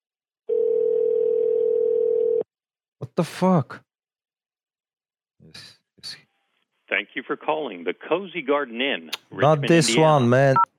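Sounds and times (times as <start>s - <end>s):
telephone dial tone: 0.5s - 2.4s
speech: 3.2s - 3.8s, 5.5s - 6.2s, 6.9s - 10.7s.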